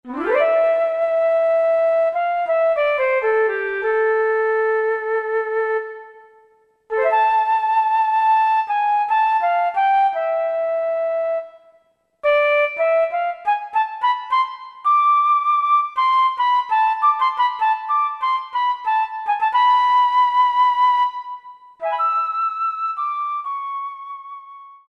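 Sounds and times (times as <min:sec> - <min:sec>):
WN Flute factory preset on Yamaha TG77: 0:00.0 - 0:24.8.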